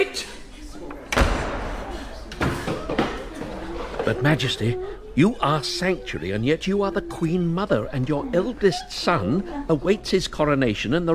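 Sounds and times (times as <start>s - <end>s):
door slamming shut: 1.1s - 3.2s
speech: 4.1s - 11.1s.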